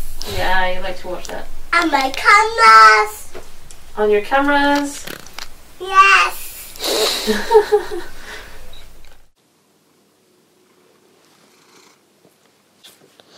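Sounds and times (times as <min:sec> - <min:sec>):
faint small noises: 0:00.0 - 0:13.3
speech: 0:00.3 - 0:05.2, 0:05.8 - 0:08.1
laughter: 0:07.1 - 0:08.3
cat purring: 0:10.5 - 0:12.2.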